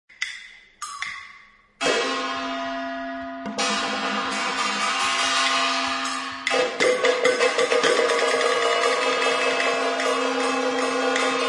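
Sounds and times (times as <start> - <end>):
gongs resounding at an opening ceremony: 1.8 - 11.4
drums resounding at an opening ceremony: 3.4 - 11.4.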